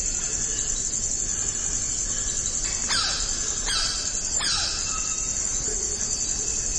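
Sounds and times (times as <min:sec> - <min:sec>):
high-pitched drone of insects in a forest: 0:00.0 - 0:06.7
black-necked red cotinga squealing cries: 0:02.9 - 0:05.3.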